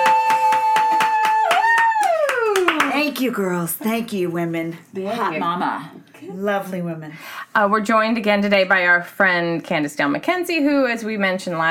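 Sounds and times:
round of applause, hands clapping: 0:00.0 - 0:03.2
speech: 0:03.2 - 0:11.6.

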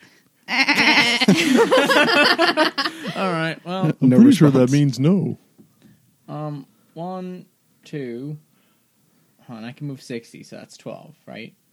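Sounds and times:
goat bleating with a wavering, quavering tone: 0:00.5 - 0:01.3
laughter: 0:00.5 - 0:04.7
speech: 0:01.2 - 0:05.4, 0:06.5 - 0:08.4, 0:09.5 - 0:11.6.

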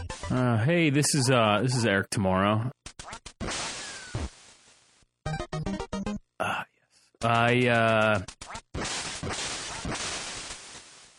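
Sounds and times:
speech: 0:00.3 - 0:02.8, 0:07.3 - 0:08.3
retro video game harsh static-like bursts: 0:03.4 - 0:04.7, 0:07.2 - 0:08.2, 0:08.7 - 0:11.1.

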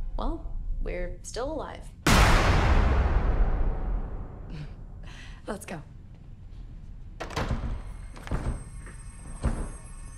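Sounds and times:
speech: 0:00.2 - 0:03.0, 0:04.5 - 0:06.0
door being forced and broken with heavy cracking thuds: 0:07.2 - 0:10.0.

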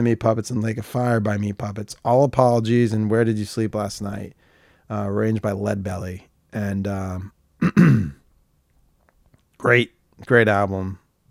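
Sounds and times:
speech: 0:00.0 - 0:08.2, 0:09.6 - 0:11.0
person clearing throat: 0:07.6 - 0:08.2.

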